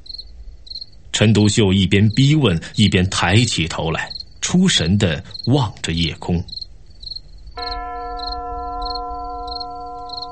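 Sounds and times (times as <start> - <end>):
rhythmic insect chirps: 0.0 - 10.3
speech: 1.2 - 6.6
distant church bell ringing: 7.6 - 10.3.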